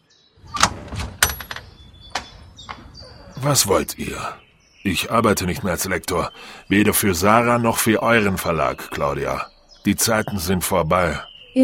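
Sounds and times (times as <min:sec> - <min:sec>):
door latch clicking: 0:00.4 - 0:03.4
door clunking and rattling as it is opened: 0:00.4 - 0:04.5
speech: 0:03.4 - 0:11.6.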